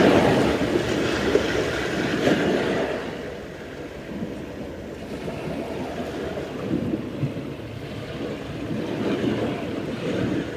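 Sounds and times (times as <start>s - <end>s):
ocean surf and waves: 0.0s - 10.5s.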